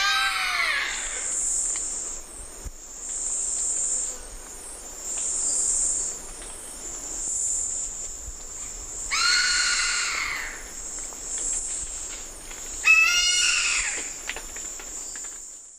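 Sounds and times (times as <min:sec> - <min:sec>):
steady high-pitched insect whine: 0:00.0 - 0:15.7
Black caracara Daptrius ater raspy screams in eastern lowlands of South America: 0:09.1 - 0:10.6, 0:12.8 - 0:14.1.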